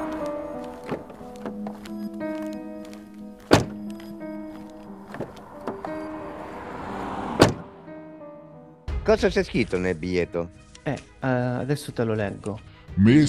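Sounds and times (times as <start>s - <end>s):
car door slamming as people get into a car: 0.2s - 1.8s, 3.4s - 4.0s, 5.0s - 7.9s
speech: 9.1s - 13.2s.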